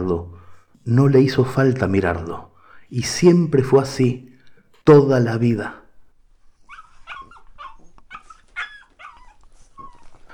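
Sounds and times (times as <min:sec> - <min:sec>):
speech: 0:00.0 - 0:05.8
small brown terrier puppy whimpering and yipping: 0:06.4 - 0:10.3.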